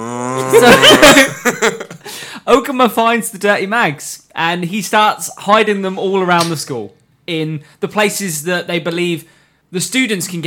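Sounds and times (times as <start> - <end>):
person's voice imitating a cow mooing: 0.0 - 0.8
laughter: 0.4 - 2.0
speech: 0.5 - 1.8, 2.5 - 10.4.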